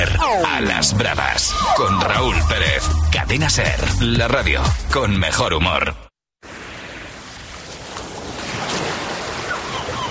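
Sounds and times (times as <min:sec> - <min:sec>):
speech: 0:00.0 - 0:06.0
waves breaking over pebbles on a beach: 0:06.4 - 0:10.0.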